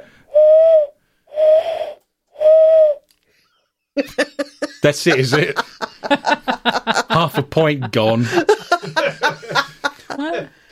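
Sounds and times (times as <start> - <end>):
person imitating owl hoots: 0.0 - 3.0
laughter: 4.0 - 10.6
speech: 4.8 - 6.8, 7.6 - 8.6.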